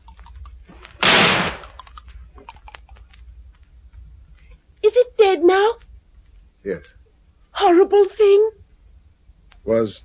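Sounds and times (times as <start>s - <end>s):
single gunshot fired at a creature in a garden: 1.0s - 1.8s
speech: 5.4s - 5.8s, 6.6s - 7.0s, 7.6s - 8.6s, 9.6s - 10.0s.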